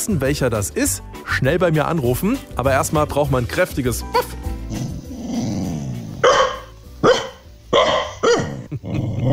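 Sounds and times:
speech: 0.0s - 4.9s
female dog growling at home in Hanau: 4.7s - 6.4s, 7.8s - 9.3s
female dog barking at home in Hanau: 6.2s - 8.6s.

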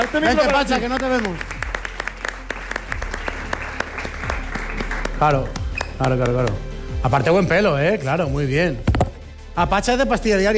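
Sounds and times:
speech: 0.0s - 1.5s, 5.2s - 8.9s, 9.6s - 10.5s
audience clapping and applauding: 0.0s - 6.2s.

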